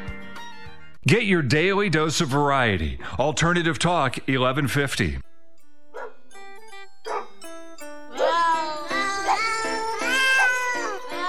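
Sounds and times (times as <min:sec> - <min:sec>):
speech: 0:01.1 - 0:05.3
pitched cat meows edited into a song melody: 0:09.3 - 0:11.2.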